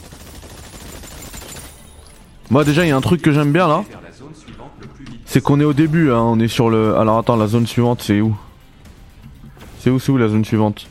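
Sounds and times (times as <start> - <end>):
gunfire in a shooting video game: 0.0 - 3.7
speech: 2.5 - 4.0, 5.3 - 8.5, 9.8 - 10.9.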